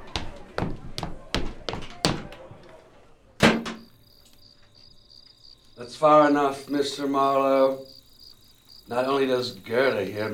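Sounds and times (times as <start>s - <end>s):
back door bursting open with a loud wooden bang: 3.4s - 3.9s
speech: 5.9s - 8.0s, 8.9s - 10.3s.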